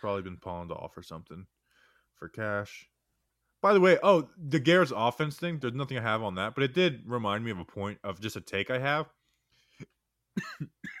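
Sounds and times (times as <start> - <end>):
speech: 0.0 - 1.6, 2.2 - 2.9, 3.6 - 9.2, 9.8 - 10.9
harsh coughs: 10.4 - 10.9.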